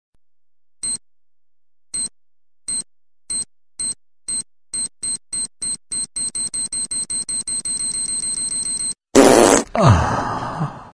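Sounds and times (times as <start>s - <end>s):
fart bomb sound: 9.2s - 9.8s.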